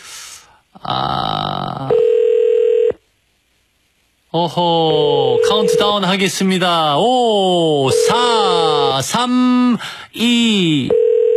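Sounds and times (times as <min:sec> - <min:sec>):
speech: 0:00.8 - 0:01.9, 0:04.4 - 0:11.0
telephone ringing tone on an unanswered call: 0:01.9 - 0:03.0, 0:05.0 - 0:06.2, 0:07.8 - 0:09.0, 0:10.9 - 0:11.3.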